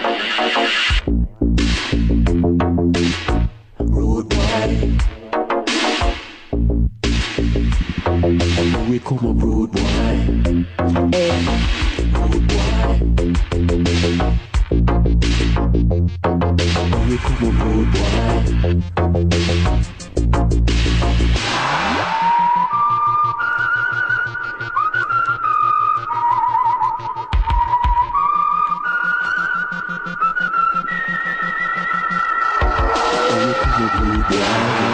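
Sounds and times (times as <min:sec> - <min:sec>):
loud music backing with a driving beat: 0:00.0 - 0:03.6, 0:04.3 - 0:09.0, 0:09.7 - 0:23.1, 0:26.8 - 0:34.9
clear sustained whistled melody: 0:22.1 - 0:34.9.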